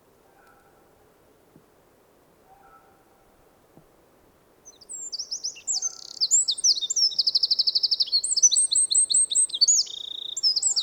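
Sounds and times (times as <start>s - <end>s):
Eurasian wren song of high ringing notes and trills: 4.6s - 10.8s.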